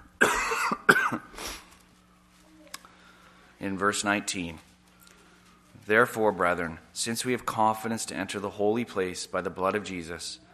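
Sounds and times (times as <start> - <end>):
faint low hum: 0.0 - 10.5
person coughing harshly: 0.2 - 1.7
speech: 3.6 - 4.7, 5.9 - 10.4.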